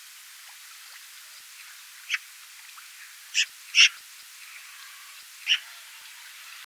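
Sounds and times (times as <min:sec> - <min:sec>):
faint steady hiss: 0:00.0 - 0:06.6
Eurasian magpie Pica pica giving harsh rasping single notes: 0:03.4 - 0:04.0, 0:04.7 - 0:06.3.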